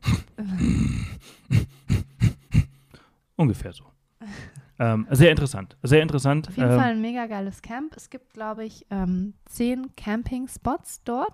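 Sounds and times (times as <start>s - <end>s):
person vocally imitating a rhinoceros snorting: 0.0s - 2.9s
speech: 3.4s - 4.0s, 4.8s - 11.3s.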